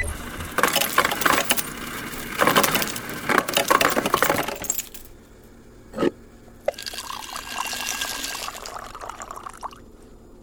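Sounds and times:
ice cubes clinking into a glass: 0.2s - 5.0s
water pouring over ice cubes: 6.7s - 9.8s.

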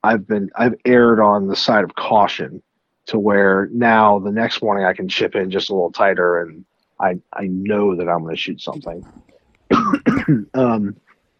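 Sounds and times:
speech: 0.0s - 11.0s
dry raspy coughs: 9.7s - 10.8s.

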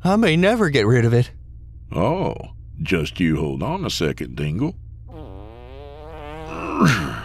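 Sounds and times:
speech: 0.0s - 4.8s, 6.8s - 7.2s
drawn-out buzzy reedy fart: 5.1s - 7.2s.

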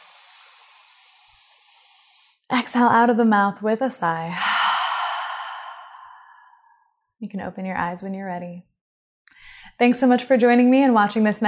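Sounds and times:
deep inhale: 0.0s - 2.5s, 4.4s - 6.8s
speech: 2.5s - 4.5s, 7.2s - 8.7s, 9.8s - 11.4s.

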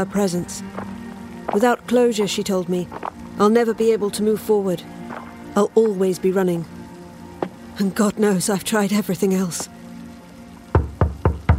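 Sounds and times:
speech: 0.0s - 6.8s, 7.8s - 9.8s
knocking on a door: 10.7s - 11.5s.

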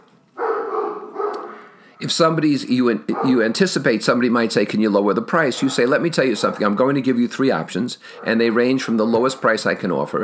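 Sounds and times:
dog barking: 0.4s - 1.8s, 3.1s - 3.6s, 5.5s - 6.6s, 8.1s - 8.5s
speech: 2.0s - 10.2s.

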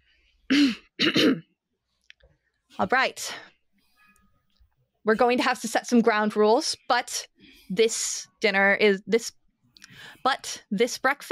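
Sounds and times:
woman clearing her throat: 0.5s - 1.5s
speech: 2.8s - 3.5s, 5.0s - 11.3s.

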